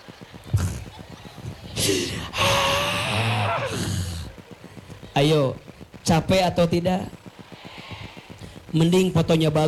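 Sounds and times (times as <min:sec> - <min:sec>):
speech: 0:01.8 - 0:02.6, 0:05.2 - 0:07.2, 0:08.7 - 0:09.6
voice imitating the breath-holding gasp of a mother sucking in her belly: 0:01.8 - 0:04.3.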